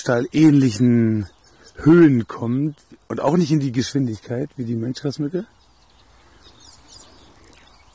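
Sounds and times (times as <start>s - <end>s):
speech: 0.0s - 5.6s
soft outdoor rumble: 0.0s - 7.9s
squeaky bird calls: 0.4s - 7.9s.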